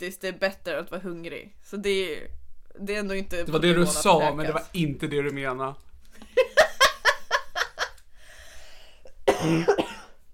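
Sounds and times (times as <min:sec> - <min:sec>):
speech: 0:00.0 - 0:05.9, 0:09.4 - 0:09.8
laughter: 0:06.2 - 0:08.0
raspy breath: 0:08.1 - 0:09.1
person coughing: 0:09.2 - 0:10.2.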